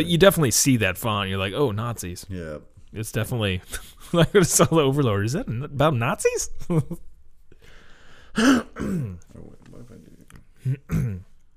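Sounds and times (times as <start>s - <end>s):
speech: 0.0s - 7.1s, 8.4s - 11.3s
person clearing throat: 8.4s - 9.3s, 10.6s - 11.4s.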